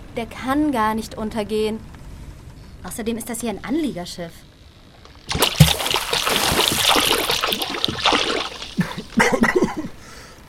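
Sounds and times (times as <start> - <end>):
speech: 0.2 - 2.0, 2.8 - 4.5
water splashing and churning: 5.3 - 9.5.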